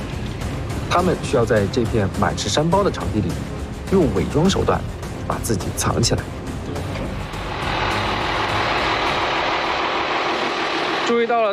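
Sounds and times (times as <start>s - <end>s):
speech: 0.9s - 6.4s, 11.1s - 11.5s
vehicles driving past on a hilly military training field: 6.8s - 11.5s.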